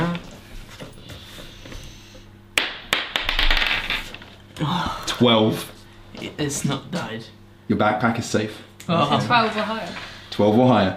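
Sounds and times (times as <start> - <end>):
dice tumbling onto a table during a tabletop role-playing game: 2.9 - 4.4
speech: 4.6 - 10.9.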